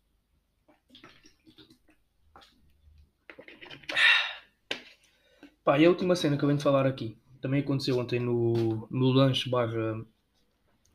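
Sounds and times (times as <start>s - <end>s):
person gulping and swallowing water: 0.6s - 4.6s
loud breathy gasp of relief: 3.9s - 4.5s
speech: 5.7s - 10.2s.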